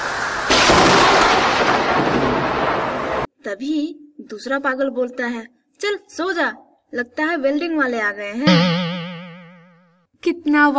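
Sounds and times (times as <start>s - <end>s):
steady rain: 0.0s - 3.3s
loud thunder crack: 0.5s - 3.3s
speech: 3.5s - 8.8s, 10.2s - 10.7s.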